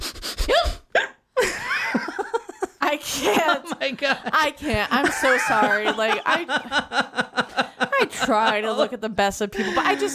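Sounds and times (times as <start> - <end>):
person imitating a woman's uncontrollable hiccups: 0.5 - 1.3
laughter: 1.4 - 10.1
speech: 3.5 - 7.4, 8.2 - 10.1.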